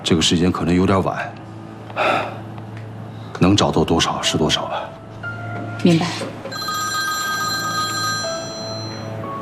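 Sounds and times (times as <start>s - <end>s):
speech: 0.1s - 1.4s, 3.4s - 5.0s, 5.8s - 6.4s
telephone ringing with a bright electronic trill: 6.5s - 9.2s.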